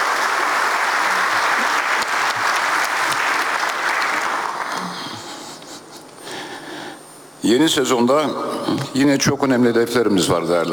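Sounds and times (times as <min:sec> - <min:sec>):
audience applause backing a football team's coaches and players: 0:00.0 - 0:05.3
speech: 0:07.4 - 0:10.7.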